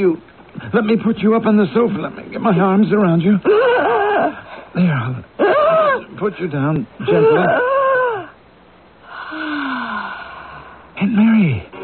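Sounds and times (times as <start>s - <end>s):
speech: 0.0s - 5.6s, 6.2s - 7.7s, 11.0s - 11.8s
woman gasping: 9.0s - 10.9s.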